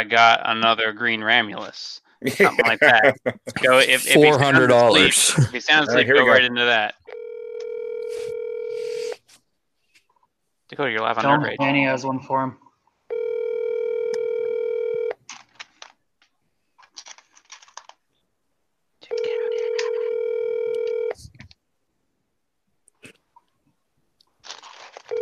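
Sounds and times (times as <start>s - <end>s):
speech: 0.0s - 7.1s, 10.7s - 13.3s
laughter: 2.2s - 6.4s
telephone call ring tones, long buzzing: 7.1s - 9.2s, 13.1s - 15.2s, 19.1s - 21.2s
scattered clicks and crackle on a telephone line: 15.2s - 18.2s, 24.2s - 25.1s.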